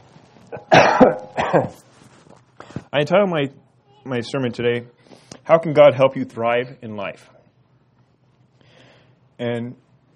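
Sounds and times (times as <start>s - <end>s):
person coughing during a sermon: 0.5s - 1.9s
speech: 0.5s - 1.9s, 2.9s - 7.4s, 9.4s - 9.8s.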